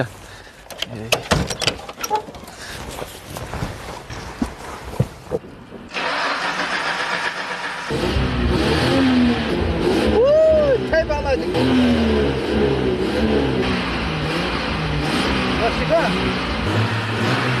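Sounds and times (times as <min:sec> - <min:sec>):
speech: 0:00.0 - 0:00.2, 0:00.8 - 0:02.3, 0:15.6 - 0:17.5
desert dune car engine cranking, catching and revving with throttle: 0:05.9 - 0:17.5.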